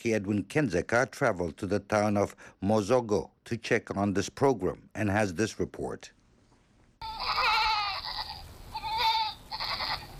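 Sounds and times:
speech: 0:00.0 - 0:06.2
goats bleating: 0:07.0 - 0:10.1.

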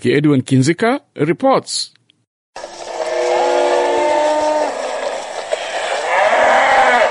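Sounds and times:
speech: 0:00.0 - 0:02.0
cattle lowing and mooing: 0:03.0 - 0:07.0.

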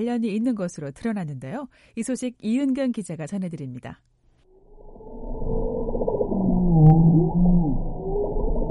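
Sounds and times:
speech: 0:00.0 - 0:04.1
bowhead whale moaning calls: 0:05.0 - 0:08.6.

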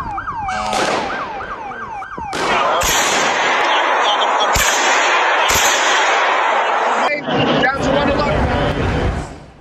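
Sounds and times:
brief wailing siren-like tone: 0:00.0 - 0:07.8
gunshots fired into the air by a masked man at a church door: 0:00.6 - 0:01.6, 0:02.2 - 0:07.0
loud chaotic crowd noise and shouting: 0:01.1 - 0:09.3.

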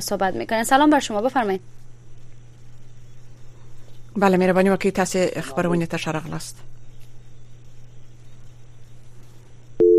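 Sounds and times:
speech: 0:00.0 - 0:01.8, 0:04.2 - 0:06.8
faint low hum: 0:00.0 - 0:09.9
steady single-pitched telephone tone after a caller's line disconnects: 0:09.8 - 0:09.9.

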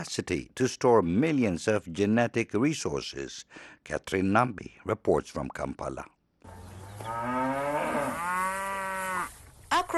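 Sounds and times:
speech: 0:00.0 - 0:06.2
Ankole cow mooing in a long bellow: 0:06.9 - 0:09.3.

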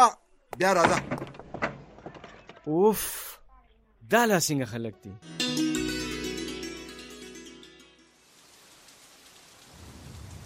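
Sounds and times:
speech: 0:00.0 - 0:01.2, 0:02.6 - 0:03.4, 0:04.1 - 0:05.7
tonal music: 0:05.2 - 0:08.3
heavy rain: 0:08.1 - 0:10.4.

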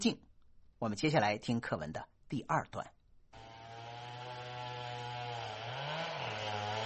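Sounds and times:
speech: 0:00.0 - 0:00.2, 0:00.8 - 0:03.0
chainsaw felling trees in a forest: 0:03.4 - 0:06.8.

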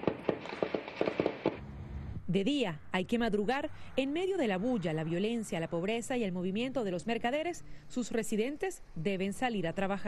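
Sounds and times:
gunshots at night: 0:00.0 - 0:01.6
speech: 0:02.3 - 0:10.0.

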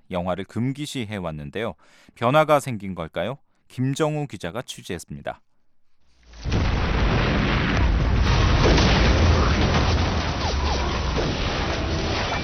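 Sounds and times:
speech: 0:00.1 - 0:05.5
barrage of explosions and booms from war drama: 0:06.4 - 0:12.4
sharp cracks of gunfire from war drama: 0:06.4 - 0:12.4.

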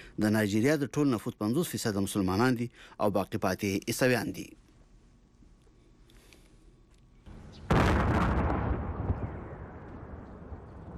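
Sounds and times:
speech: 0:00.2 - 0:04.6
deep rumbling decay of explosion: 0:07.6 - 0:10.9
single loud explosion at night in Kabul: 0:07.7 - 0:10.9.

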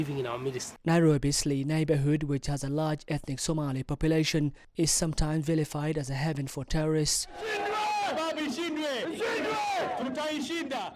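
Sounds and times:
speech: 0:00.0 - 0:10.9
large crowd chanting in unison at solidarity rally: 0:07.2 - 0:10.9.

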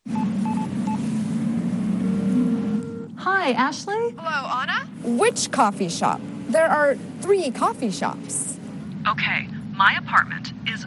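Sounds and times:
constant low hum: 0:00.0 - 0:10.8
steady held telephone tone: 0:02.0 - 0:03.2
speech: 0:03.2 - 0:10.8.

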